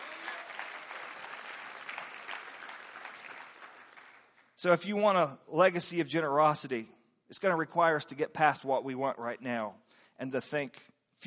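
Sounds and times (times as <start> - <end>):
large audience applause: 0.0 - 4.5
speech: 4.6 - 11.2.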